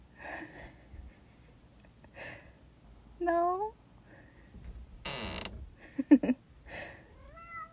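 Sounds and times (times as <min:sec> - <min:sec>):
speech: 0:03.2 - 0:03.8, 0:06.1 - 0:06.4
door hinge needing lubrication creaking: 0:05.0 - 0:05.7
cat meowing: 0:07.2 - 0:07.7.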